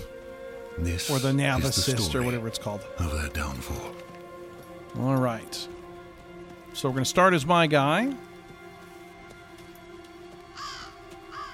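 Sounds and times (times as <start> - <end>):
speech: 0.8 - 4.1, 4.9 - 5.8, 6.8 - 8.3
crow cawing in a video game: 10.4 - 11.5.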